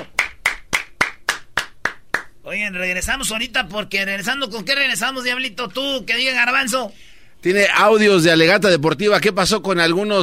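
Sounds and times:
hands clapping: 0:00.0 - 0:02.3
speech: 0:02.5 - 0:10.2.

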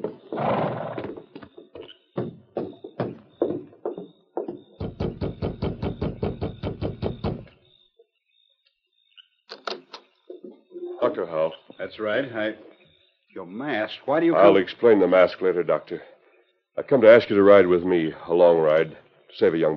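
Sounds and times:
horse hooves clopping: 0:00.0 - 0:07.6
horse whinny: 0:00.3 - 0:01.3
speech: 0:11.0 - 0:12.7, 0:13.4 - 0:16.1, 0:16.9 - 0:19.7.

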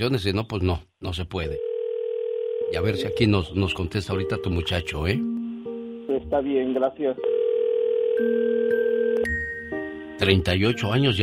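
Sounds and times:
speech: 0:00.0 - 0:01.7, 0:02.7 - 0:05.3, 0:06.2 - 0:07.4, 0:08.2 - 0:09.4, 0:10.2 - 0:11.2
telephone dial tone after a call cut off: 0:01.6 - 0:03.2, 0:07.2 - 0:09.3.

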